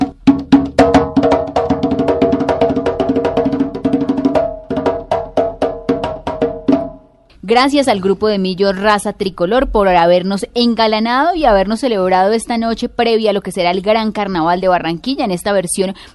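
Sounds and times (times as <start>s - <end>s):
tambor alegre drum playing a fast driving rhythm: 0.0s - 7.2s
speech: 7.5s - 16.1s.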